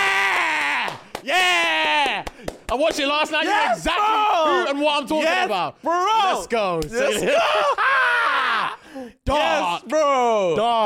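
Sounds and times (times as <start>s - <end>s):
person screaming excitedly: 0.0s - 2.2s, 3.5s - 4.8s, 7.1s - 8.8s
speech: 2.7s - 7.9s, 9.0s - 10.8s.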